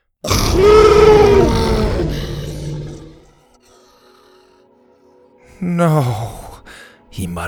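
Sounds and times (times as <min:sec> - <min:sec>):
small T-Rex dinosaur roar: 0:00.2 - 0:03.4
speech: 0:05.6 - 0:06.4, 0:07.2 - 0:07.4.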